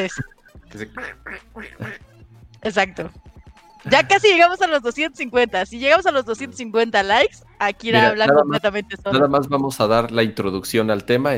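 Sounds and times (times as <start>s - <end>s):
duck quacking: 0.0s - 2.0s
speech: 0.0s - 11.3s.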